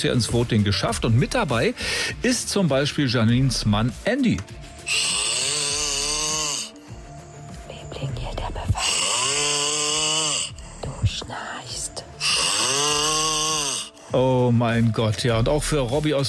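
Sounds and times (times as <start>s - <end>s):
speech: 0.0s - 5.3s, 14.1s - 16.2s
sleeping man snoring loudly in Brandenburg Germany: 4.8s - 7.5s, 8.7s - 11.2s, 12.1s - 14.2s.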